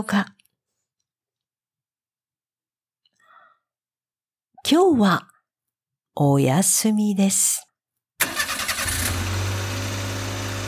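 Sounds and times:
speech: 0.0 - 0.4, 4.7 - 5.3, 6.2 - 7.7
car engine starting: 8.2 - 10.6.

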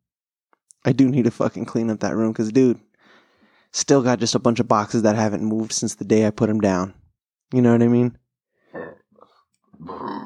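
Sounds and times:
speech: 0.8 - 2.9, 3.7 - 9.0
loud throaty burp: 8.7 - 10.2.

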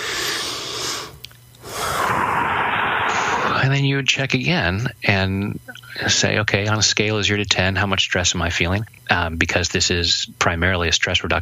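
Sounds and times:
deep breath: 0.0 - 3.6
speech: 3.7 - 11.4.

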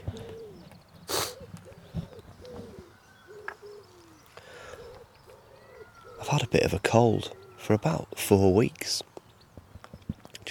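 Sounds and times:
dove or pigeon cooing outdoors: 0.0 - 8.1
speech: 6.4 - 9.1.

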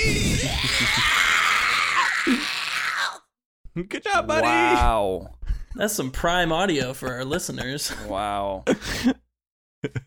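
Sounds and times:
person imitating a harsh screeching cry: 0.0 - 3.3, 4.1 - 4.9
speech: 3.8 - 9.2, 9.8 - 10.0.

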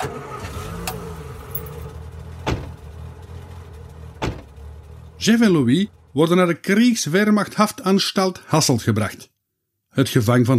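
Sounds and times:
car engine idling: 0.0 - 7.3
car doors slamming shut: 2.4 - 2.9, 4.1 - 4.6
speech: 5.2 - 9.3, 10.0 - 10.5.

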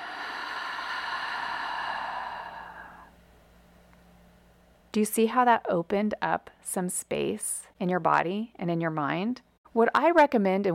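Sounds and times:
deep breath in and out during guided breathing: 0.0 - 3.2
speech: 5.0 - 10.7.

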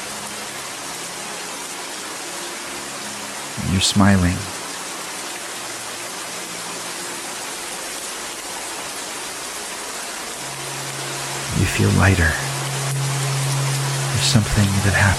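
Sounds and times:
steady rainfall: 0.0 - 15.1
speech: 3.6 - 4.5, 11.8 - 12.5, 14.2 - 15.1.

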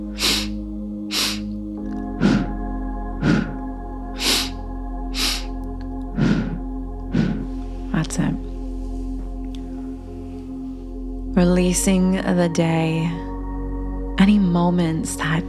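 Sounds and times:
sharp rhythmic breath pulses from a pulse-breathing exercise: 0.0 - 1.6, 2.2 - 8.0
low sustained drone: 0.0 - 15.4
speech: 11.4 - 13.2, 14.2 - 15.4.

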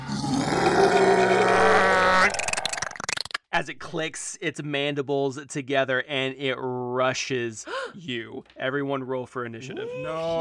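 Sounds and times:
person voicing a gravelly monster roar: 0.0 - 2.8, 9.8 - 10.4
speech: 3.6 - 10.4.

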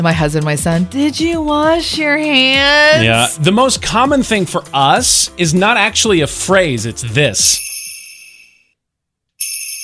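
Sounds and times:
speech: 0.0 - 7.7
door-hanging bells jingling: 7.5 - 8.7, 9.4 - 9.8.

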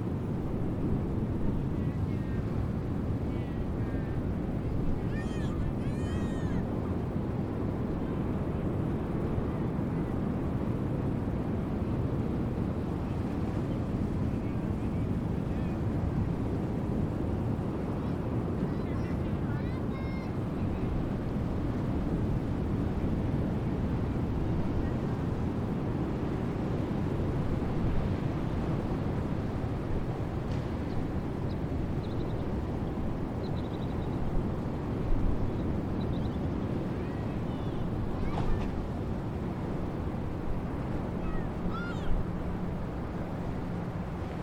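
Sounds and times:
wind and surf roar at a breakwater beach: 0.0 - 44.4
faint voices: 1.6 - 6.7, 13.1 - 16.0, 17.9 - 21.2, 36.9 - 38.8, 41.1 - 42.3.

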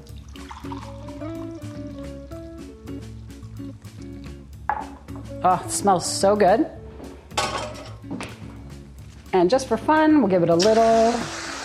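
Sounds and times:
hot drink poured into a mug: 0.0 - 4.3
tuneful music: 0.0 - 11.6
speech: 5.4 - 6.8, 9.4 - 11.4.

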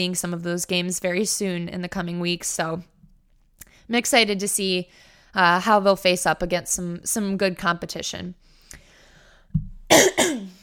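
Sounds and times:
speech: 0.0 - 2.9, 3.9 - 8.5
harsh coughs: 9.9 - 10.6.

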